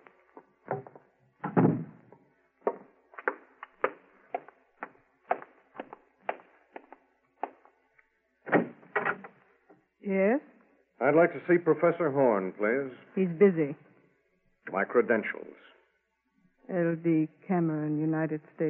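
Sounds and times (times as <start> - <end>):
hollow wooden thumps and knocks: 0.6 - 7.7
door being closed: 0.7 - 2.0, 8.5 - 9.4
speech: 11.1 - 13.8, 14.7 - 15.7, 16.7 - 18.6.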